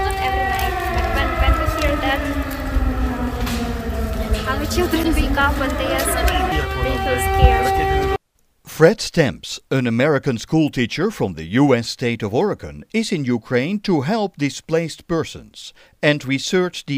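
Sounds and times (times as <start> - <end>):
air raid siren wailing: 0.0 - 8.2
speech: 4.8 - 8.1, 8.8 - 16.9.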